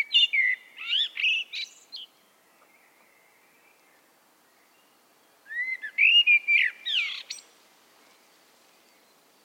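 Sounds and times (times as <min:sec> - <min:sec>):
common blackbird Turdus merula singing fluting whistles: 0:00.0 - 0:07.5.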